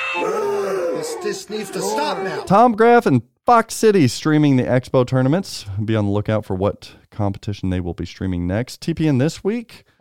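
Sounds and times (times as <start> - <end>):
person imitating a Godzilla-style roar: 0.1 - 2.5
speech: 0.1 - 10.0.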